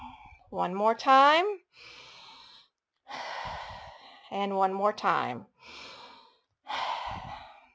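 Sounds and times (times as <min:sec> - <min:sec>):
slow deep breathing during a guided relaxation exercise: 0:00.0 - 0:00.5, 0:01.7 - 0:04.3, 0:05.6 - 0:07.7
speech: 0:00.5 - 0:02.0, 0:04.3 - 0:05.9.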